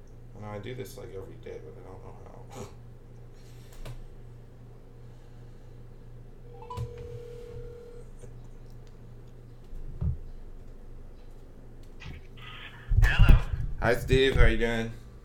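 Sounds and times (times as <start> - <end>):
constant low electrical hum: 0.0 - 15.2
speech: 0.4 - 2.8, 13.8 - 15.0
telephone ringing tone: 6.5 - 8.2.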